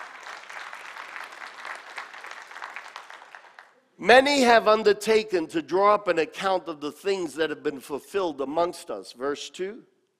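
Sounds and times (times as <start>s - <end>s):
room full of people applauding: 0.0s - 3.8s
speech: 4.0s - 9.9s.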